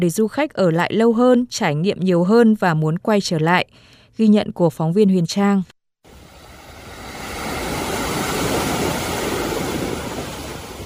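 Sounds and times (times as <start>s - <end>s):
speech: 0.0s - 5.8s
sea waves breaking on Sầm Sơn beach: 6.1s - 10.8s.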